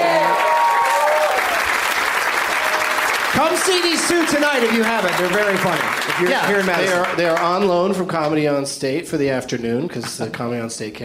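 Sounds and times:
audience at a comedy show applauding: 0:00.0 - 0:08.4
speech: 0:03.4 - 0:11.0.

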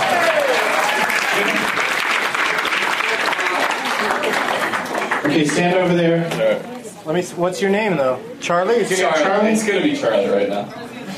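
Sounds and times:
crowd clapping: 0:00.0 - 0:05.9
speech: 0:05.4 - 0:11.1.

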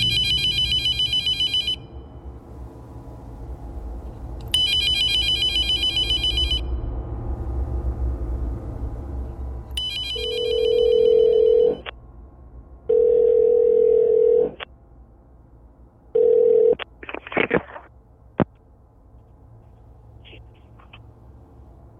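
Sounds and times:
telephone ringing: 0:00.0 - 0:01.8, 0:09.8 - 0:11.9, 0:12.9 - 0:14.6, 0:16.2 - 0:16.8
steady low rumble: 0:00.0 - 0:21.9.

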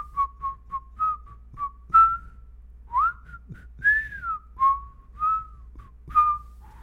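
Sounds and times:
person whistling a song melody for a guessing game: 0:00.0 - 0:06.8.

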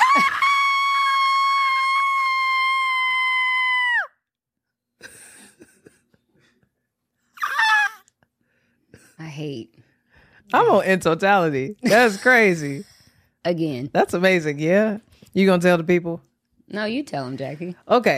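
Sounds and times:
person screaming excitedly: 0:00.0 - 0:04.1, 0:07.4 - 0:08.0
speech: 0:00.2 - 0:00.4, 0:10.5 - 0:18.1.

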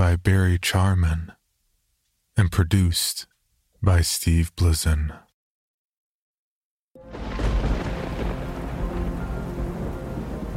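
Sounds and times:
speech: 0:00.1 - 0:01.4, 0:02.4 - 0:05.2
deep thunder rumbling: 0:07.0 - 0:10.5
heavy rain: 0:07.0 - 0:10.5.

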